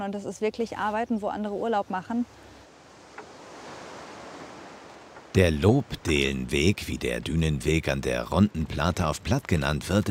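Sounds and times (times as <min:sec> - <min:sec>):
speech: 0:00.0 - 0:02.5, 0:05.3 - 0:10.0
sea surf rushing on the coast of an East Frisian island by a dune path: 0:02.2 - 0:08.6.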